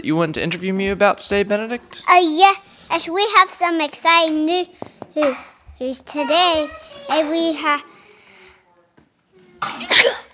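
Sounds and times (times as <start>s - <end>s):
speech: 0.0s - 7.9s
sneeze: 9.6s - 10.3s.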